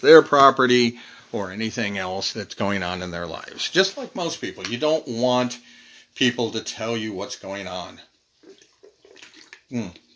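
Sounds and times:
speech: 0.0s - 8.1s, 9.7s - 10.0s
person gulping water: 8.4s - 10.1s
person sipping water: 8.4s - 10.1s.

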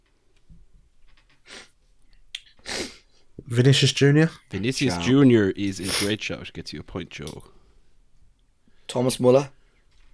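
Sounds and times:
speech: 3.5s - 7.6s, 8.9s - 9.6s
sneeze: 5.8s - 6.2s.

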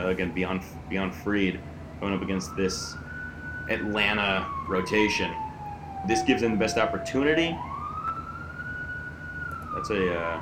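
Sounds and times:
speech: 0.0s - 3.1s, 3.7s - 5.4s, 6.0s - 7.7s, 9.8s - 10.4s
emergency vehicle siren passing: 0.0s - 10.4s.

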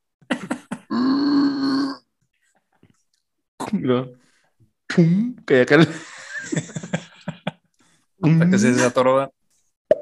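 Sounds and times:
voice imitating straining grunts of someone on the toilet: 0.9s - 2.0s
speech: 3.8s - 4.2s, 4.9s - 7.0s, 8.2s - 9.4s
laughter: 5.8s - 7.7s.

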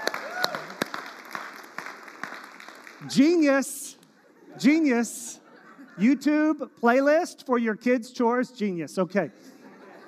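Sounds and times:
person whooping: 0.0s - 0.8s
crowd applauding: 0.0s - 3.4s
speech: 3.0s - 4.0s, 4.6s - 5.4s, 6.0s - 9.5s
laughter: 4.2s - 6.3s, 9.3s - 10.0s.

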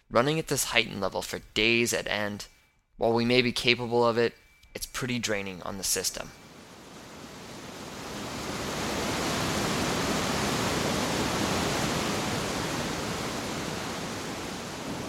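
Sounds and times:
speech: 0.1s - 6.4s
big river rushing over large boulders: 6.6s - 15.0s.

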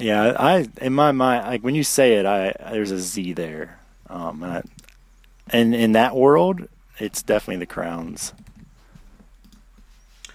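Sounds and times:
speech: 0.0s - 4.8s, 5.5s - 8.5s
computer mouse clicking: 8.3s - 10.3s.

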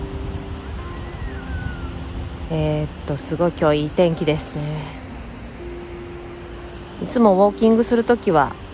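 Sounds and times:
faint tonal hum: 0.0s - 8.7s
river water tumbling over a weir step: 0.0s - 8.7s
speech: 2.5s - 5.0s, 7.0s - 8.6s.

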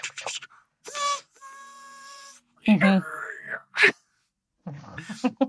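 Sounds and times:
person vocally mimicking a train whistle: 0.9s - 2.4s
laughter: 5.0s - 5.4s.

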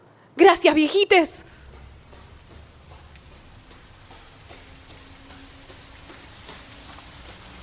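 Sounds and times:
speech: 0.4s - 1.5s
scattered splashing patters of water: 1.5s - 7.6s.

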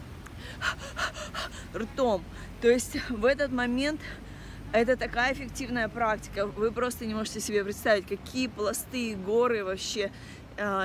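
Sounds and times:
breathy mouth breaths: 0.3s - 2.5s
speech: 0.5s - 10.8s.

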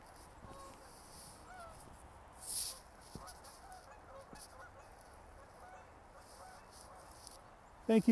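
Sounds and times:
quiet hissy outdoor background: 0.0s - 8.1s
geese honking faintly in the distance flying overhead: 0.4s - 1.9s, 2.7s - 7.3s
speech: 7.9s - 8.1s.

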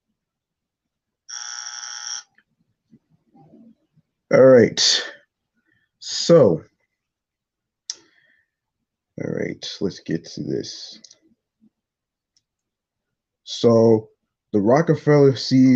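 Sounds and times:
short loud buzzer tone: 1.3s - 2.3s
speech: 4.3s - 5.1s, 6.1s - 6.7s, 9.2s - 11.2s, 13.5s - 15.7s.

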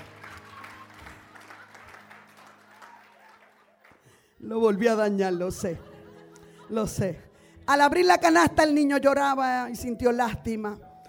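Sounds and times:
audience applauding: 0.0s - 4.3s
laughter: 0.4s - 7.2s
speech: 4.4s - 5.9s, 6.7s - 10.9s.

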